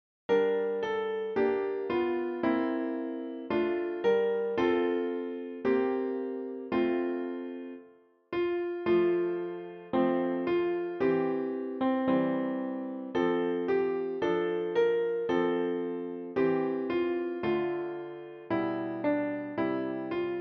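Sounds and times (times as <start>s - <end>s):
Christmas carol played on piano: 0.3s - 20.3s.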